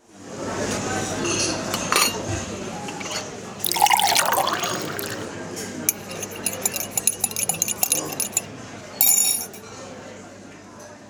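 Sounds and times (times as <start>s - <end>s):
light clinks and taps of dishware and cutlery: 1.2s - 5.2s, 5.9s - 9.8s
liquid pouring into a cup: 3.6s - 5.3s, 5.9s - 8.4s.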